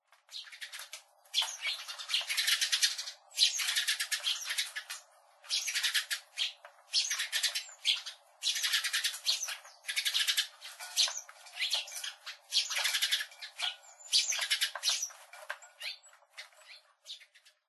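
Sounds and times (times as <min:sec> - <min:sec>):
sparrows in Nemuro: 0:00.1 - 0:17.6.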